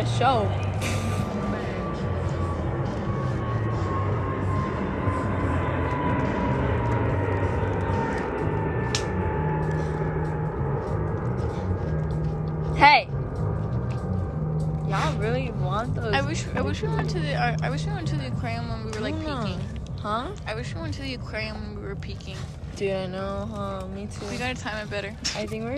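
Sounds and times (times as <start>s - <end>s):
airplane engine roaring overhead: 0.0s - 25.7s
speech: 0.2s - 0.9s, 16.3s - 25.7s.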